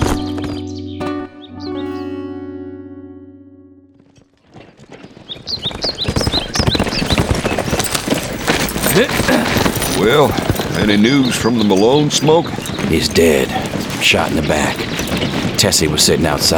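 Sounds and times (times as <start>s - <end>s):
birds chirping overhead: 0.0s - 2.6s, 4.4s - 16.5s
big black horse galloping: 4.0s - 16.5s
speech: 9.0s - 9.3s, 10.0s - 16.5s.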